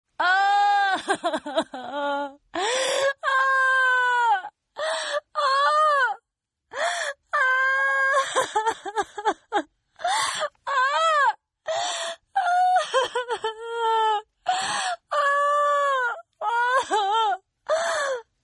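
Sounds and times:
woman crying: 0.2s - 6.2s, 6.8s - 18.2s.

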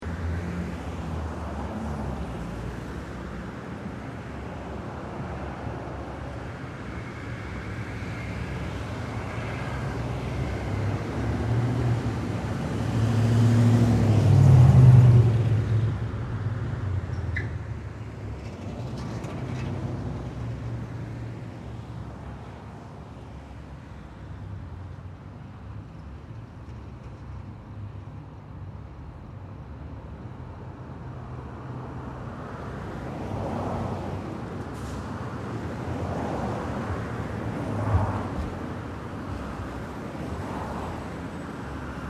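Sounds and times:
moderate two-way city street traffic moving in both directions: 0.0s - 42.0s.

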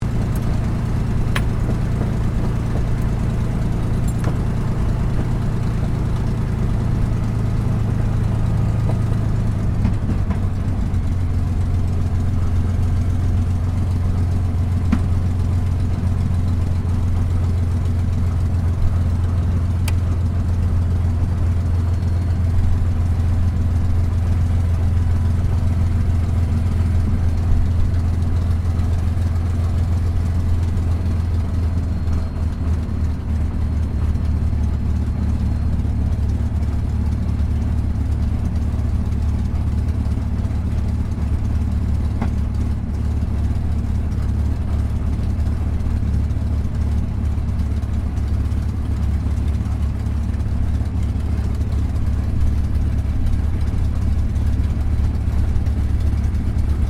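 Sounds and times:
CAC CA-18 Mustang Mk23 taxiing from the interior: 0.0s - 56.8s.

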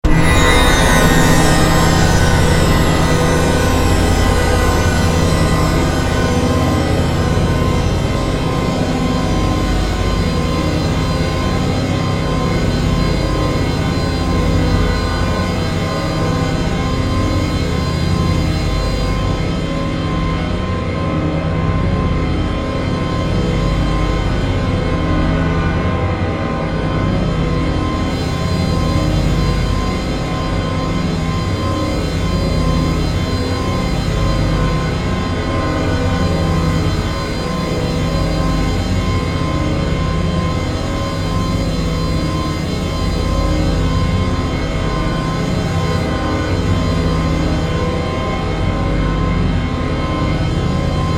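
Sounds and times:
spooky synth chimes: 0.0s - 7.6s
spooky horror synth drone: 0.0s - 51.1s.

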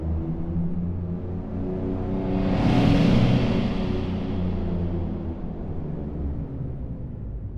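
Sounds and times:
slow metallic tonal sci-fi transition whoosh: 0.1s - 7.4s.

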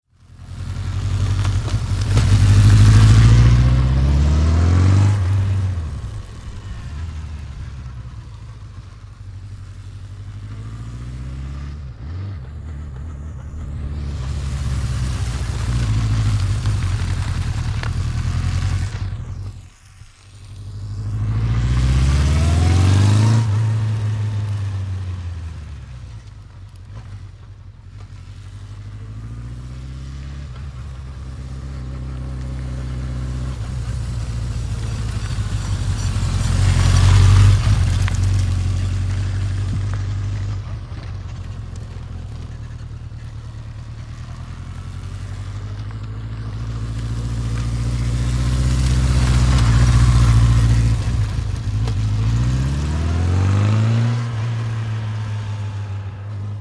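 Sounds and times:
Suzuki 750 motorbike cruising up and past then stopping: 0.2s - 56.6s.

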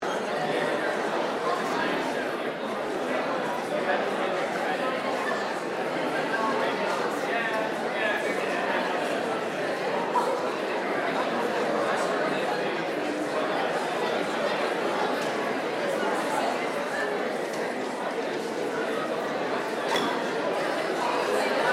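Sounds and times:
indoor crowd ambience at an auditorium event: 0.0s - 21.7s.

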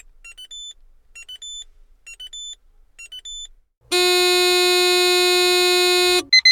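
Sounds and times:
small electronic alarms: 3.9s - 6.3s.

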